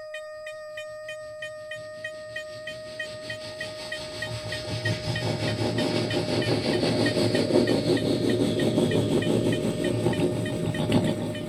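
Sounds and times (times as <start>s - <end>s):
train rumbling and chugging past on rails: 1.7s - 11.4s
faint hiss of steam: 3.3s - 11.4s.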